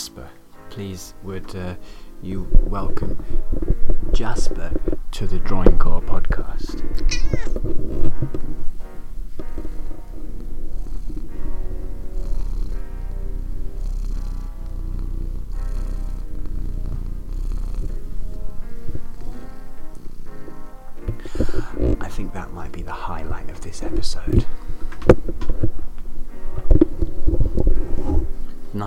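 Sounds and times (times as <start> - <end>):
speech: 0.8 - 8.8
cat purring: 1.0 - 28.8
cat meowing: 7.0 - 7.6.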